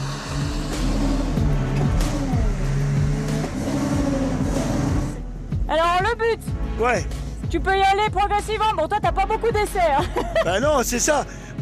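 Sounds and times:
drifting car engine revving on a wet track: 0.0s - 7.4s
tire and road noise on a wet track: 0.0s - 8.9s
speech: 6.8s - 11.4s.

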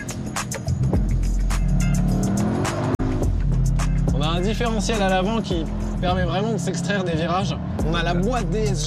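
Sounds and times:
turbocharged car engine accelerating hard: 0.0s - 8.8s
speech: 4.4s - 8.8s.

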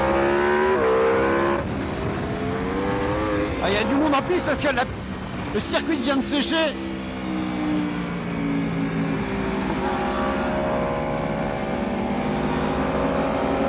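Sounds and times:
Aprilia motorcycle V4 engine revving on a race circuit: 0.0s - 4.5s, 6.2s - 13.6s
speech: 3.7s - 6.9s.

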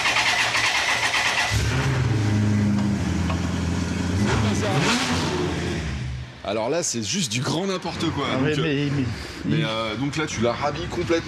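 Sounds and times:
Maserati 400 hp car engine cranking, idling and revving: 0.0s - 6.4s
constant noise: 0.0s - 11.2s
speech: 6.5s - 11.2s.

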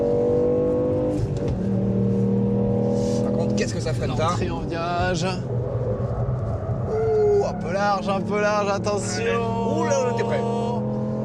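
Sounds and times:
200-horsepower rally car accelerating on a racetrack: 0.0s - 11.2s
speech: 3.8s - 5.6s, 7.6s - 10.7s.

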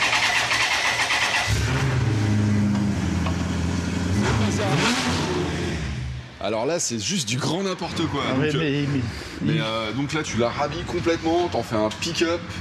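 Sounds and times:
Maserati car engine starting and revving: 0.0s - 6.4s
noise: 0.0s - 12.5s
speech: 6.4s - 12.5s.

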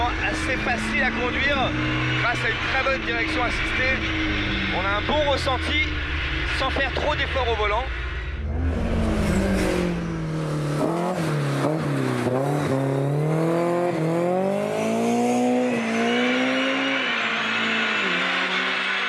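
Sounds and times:
sports car engine revving hard to high rpm through gear changes: 0.0s - 19.0s
speech: 0.5s - 8.0s.

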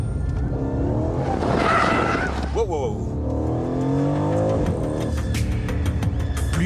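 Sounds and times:
twin-turbo V8 sports car engine roaring on a race circuit: 0.2s - 6.5s
rear tires squealing and skidding on asphalt through a drift: 0.6s - 2.8s.

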